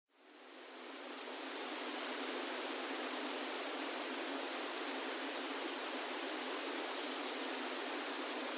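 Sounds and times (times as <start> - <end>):
steady background hiss: 0.2 - 8.5
yellow-browed warbler song: 1.6 - 4.7.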